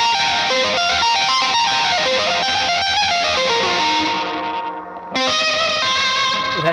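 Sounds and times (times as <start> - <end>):
electric guitar riff through heavy distortion pedal: 0.0 - 6.7.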